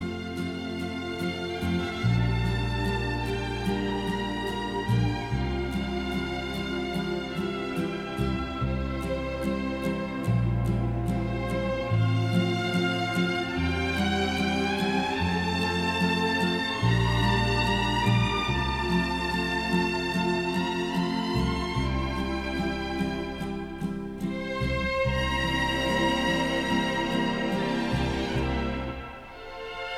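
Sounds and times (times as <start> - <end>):
violin and orchestra playing a romance: 0.0 - 29.9.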